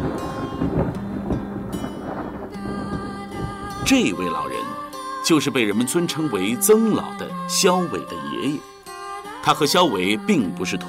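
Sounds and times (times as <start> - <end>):
rain: 0.0 - 3.9
thunder rumbling from a lightning strike: 0.0 - 5.0
sharp crackling bursts: 0.0 - 5.4
speech: 3.9 - 8.7, 9.4 - 10.8.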